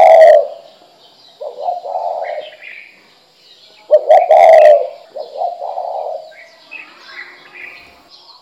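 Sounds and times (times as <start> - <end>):
spotted dove cooing: 0.0 - 0.7, 1.4 - 2.8, 3.9 - 6.5.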